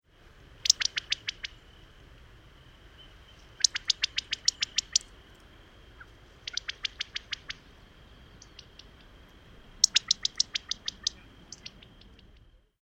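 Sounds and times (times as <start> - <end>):
California quail alarm call: 0.6 - 1.6, 3.3 - 5.2, 5.9 - 7.7, 8.3 - 9.2, 9.8 - 12.4.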